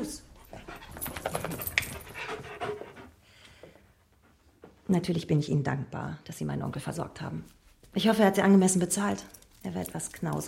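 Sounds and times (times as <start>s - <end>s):
dog panting on a sofa in a house: 0.2s - 4.9s
speech: 4.9s - 10.4s.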